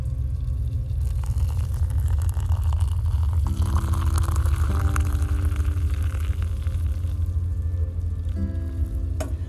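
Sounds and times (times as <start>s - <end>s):
hot water pouring into a coffee mug: 0.0s - 7.4s
constant low rumble: 0.0s - 9.4s.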